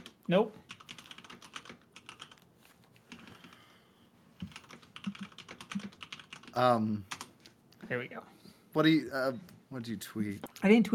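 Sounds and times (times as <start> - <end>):
typing on a computer keyboard: 0.0 - 2.4, 4.4 - 7.3
speech: 0.3 - 0.7, 6.6 - 7.1, 7.9 - 10.9.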